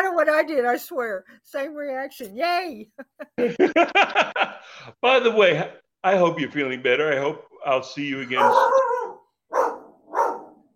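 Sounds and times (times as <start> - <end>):
speech: 0.2 - 8.9
laughter: 2.9 - 4.9
dog barking gruff woofs: 8.3 - 10.7.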